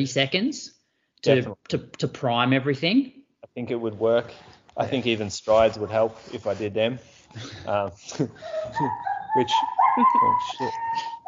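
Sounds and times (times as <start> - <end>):
speech: 0.0 - 11.2
dog whimpering and yelping in pain from a sprained wrist: 8.4 - 11.2.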